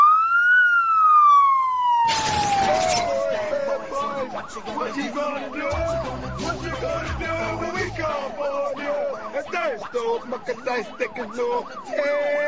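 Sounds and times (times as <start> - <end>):
police siren wailing: 0.0 - 12.4
dense busy music-like layers: 3.0 - 9.3.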